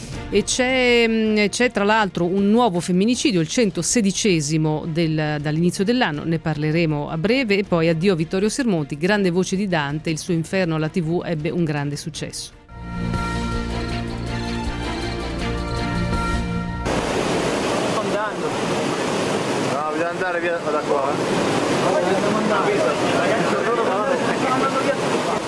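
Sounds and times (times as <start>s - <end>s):
music: 0.0s - 16.9s
speech: 0.3s - 13.2s, 20.2s - 23.6s
flooded Tanaro river roaring in Piedmont with a huge volume of water: 16.8s - 25.4s.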